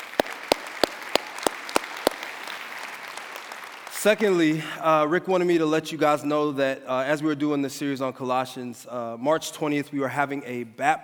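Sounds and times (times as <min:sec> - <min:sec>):
sharp evenly spaced claps: 0:00.0 - 0:04.4
crowd applauding for the senior pastor: 0:00.0 - 0:04.6
speech: 0:04.0 - 0:11.0.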